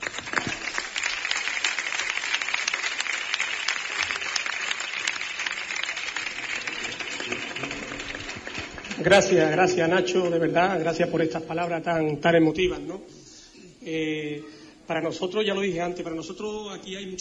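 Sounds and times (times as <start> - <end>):
audience applause: 0.0 - 9.7
speech: 9.0 - 13.2, 13.8 - 17.1.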